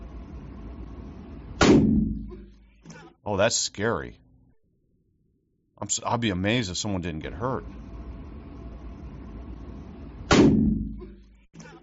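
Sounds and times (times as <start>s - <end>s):
large-caliber pistol gunshot: 1.6s - 2.2s, 10.3s - 10.8s
speech: 3.3s - 4.2s, 5.8s - 7.9s.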